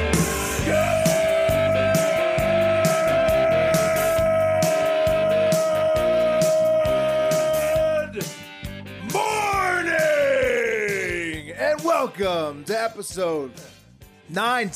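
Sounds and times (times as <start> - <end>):
pounding rhythmic music beat: 0.0 - 14.7
man screaming: 0.6 - 8.3, 9.0 - 11.4
speech: 12.2 - 14.7.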